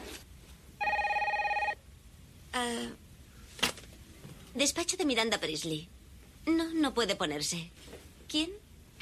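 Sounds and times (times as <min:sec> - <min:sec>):
telephone ringing with an electronic trill: 0:00.8 - 0:01.8
speech: 0:04.6 - 0:08.6.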